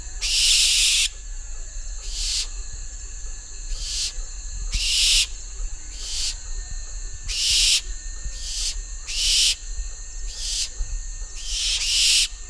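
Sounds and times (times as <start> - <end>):
juvenile Tyto alba calling: 0.2 - 1.2, 2.0 - 2.6, 3.7 - 6.6, 7.2 - 10.8, 11.4 - 12.4.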